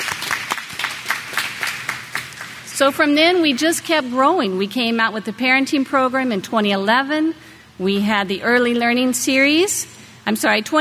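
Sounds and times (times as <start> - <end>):
audience applause after a talk: 0.0 - 2.6
speech: 2.8 - 10.8.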